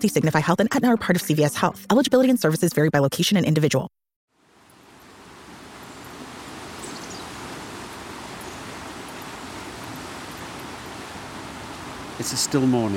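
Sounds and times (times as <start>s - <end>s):
speech: 0.0s - 4.0s, 12.2s - 12.9s
River water rushing over rapids on a still early December morning: 4.4s - 12.9s.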